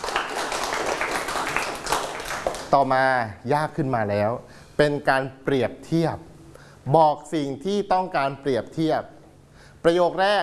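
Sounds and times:
hand clapping as applause during a language lesson: 0.0 - 2.8
speech: 2.7 - 9.2, 9.8 - 10.4.

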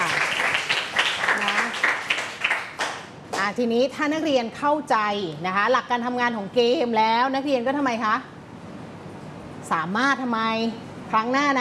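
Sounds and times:
group of students clapping in a classroom: 0.0 - 3.4
speech: 3.5 - 8.3, 9.7 - 11.5.

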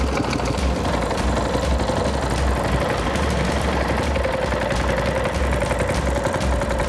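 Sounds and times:
boat engine idling on a river with very high water: 0.0 - 6.8.

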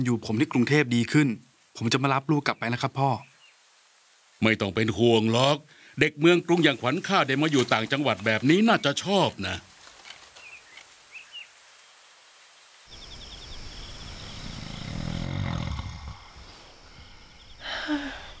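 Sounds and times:
speech: 0.0 - 3.3, 4.4 - 9.7
nighttime insects chirping: 0.0 - 18.3
nighttime birds chirping: 1.8 - 3.7, 4.4 - 12.1, 12.9 - 18.3
loud rasping snores: 14.3 - 17.5.

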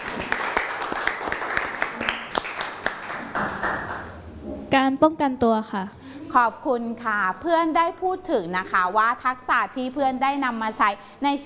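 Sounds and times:
small group clapping for a student in a classroom: 0.0 - 4.3
speech: 4.7 - 11.4.

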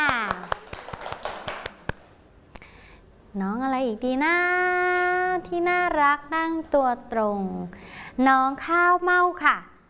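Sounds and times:
handful of people clapping: 0.0 - 2.1
speech: 3.4 - 9.7.

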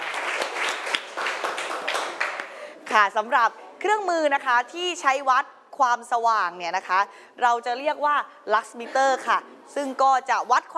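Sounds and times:
group of people clapping for a group's representative: 0.0 - 2.6
speech: 2.9 - 10.7.

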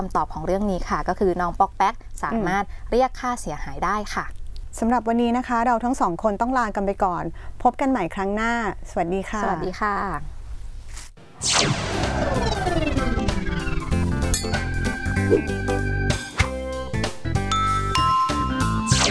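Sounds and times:
speech: 0.0 - 10.4, 11.4 - 13.1, 15.3 - 15.6
busy musical jingle: 11.9 - 19.0
bright bell ringing: 14.2 - 14.8, 17.5 - 18.8.

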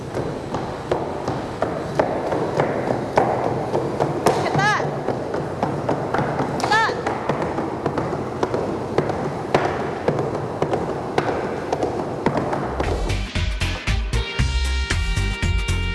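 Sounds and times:
horse hooves trotting fast on a treadmill: 0.0 - 13.1
person speaking: 6.6 - 7.1
music: 12.8 - 15.9.

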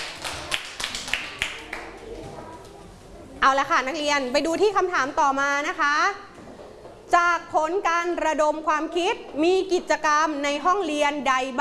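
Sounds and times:
students clapping hands in a room: 0.0 - 2.3
speech: 3.4 - 6.3, 7.1 - 11.6.

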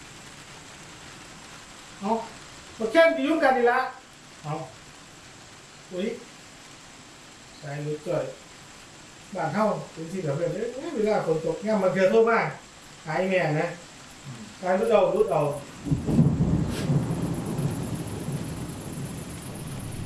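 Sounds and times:
steady rain: 0.0 - 20.0
man speaking: 2.0 - 4.8, 5.9 - 6.3, 7.6 - 8.4, 9.3 - 15.7
deep low rumble: 15.6 - 20.0.

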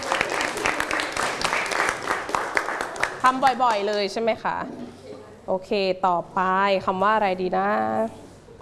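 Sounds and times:
small group in an English class clapping for a student: 0.0 - 4.1
speech: 3.2 - 8.2.

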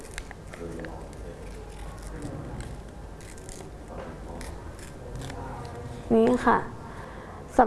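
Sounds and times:
paper being torn by hand: 0.0 - 5.8
speech: 6.1 - 6.7.

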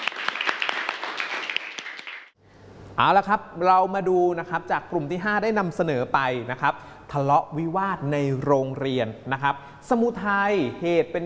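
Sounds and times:
group applause: 0.0 - 2.4
speech: 3.0 - 11.2.

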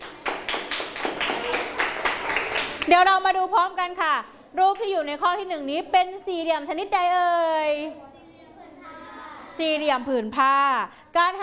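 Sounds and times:
scattered hand claps for a classmate in a class: 0.0 - 3.0
speech: 2.9 - 8.1, 9.6 - 11.4.

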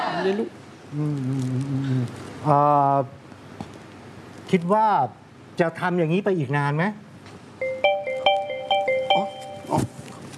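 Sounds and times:
speech: 0.2 - 3.2, 4.5 - 7.0
phone ringtone of short bright electronic notes: 7.6 - 9.8.

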